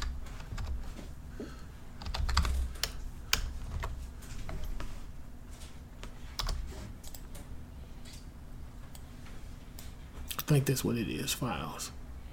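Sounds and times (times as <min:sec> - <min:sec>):
typing on a computer keyboard: 0:00.0 - 0:00.9, 0:02.0 - 0:04.0, 0:06.4 - 0:07.4
speech: 0:10.5 - 0:12.0.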